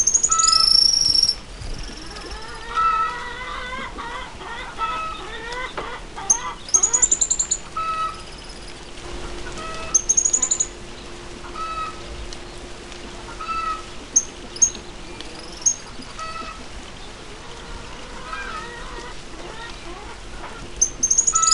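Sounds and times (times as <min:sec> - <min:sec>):
cattle tyrant Machetornis rixosa high squeaky calls and chattering: 0:00.0 - 0:02.9, 0:05.0 - 0:08.8, 0:09.4 - 0:10.8, 0:13.3 - 0:16.6, 0:20.8 - 0:21.5
background noise: 0:00.0 - 0:21.5.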